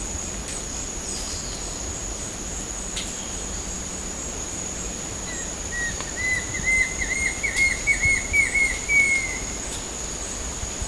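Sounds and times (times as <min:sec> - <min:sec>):
constant high insect hum: 0:00.0 - 0:10.8
banded kingfisher whistled call at Sepilok: 0:05.8 - 0:09.4.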